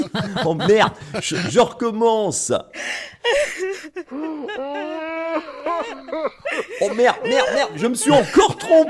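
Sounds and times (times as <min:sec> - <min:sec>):
laughter: 0:00.0 - 0:01.6, 0:03.3 - 0:08.8
speech: 0:00.2 - 0:08.8
person wailing and sobbing in despair: 0:03.2 - 0:08.8.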